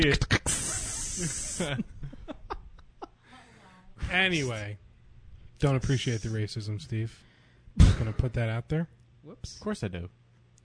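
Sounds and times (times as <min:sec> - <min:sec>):
speech: 0:00.0 - 0:00.3, 0:01.2 - 0:01.9, 0:04.1 - 0:04.8, 0:05.6 - 0:07.3, 0:08.0 - 0:10.2
person imitating a spray-paint hiss with the voice: 0:00.0 - 0:01.9, 0:05.8 - 0:06.4
person laughing in short rhythmic bursts: 0:00.0 - 0:03.2.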